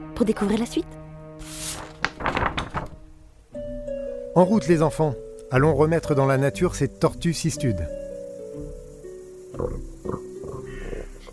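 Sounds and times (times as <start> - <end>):
speech: 0.0 - 1.6, 4.4 - 8.0, 9.6 - 10.2
wild boar rooting in the earth with snuffling grunts: 9.5 - 11.3.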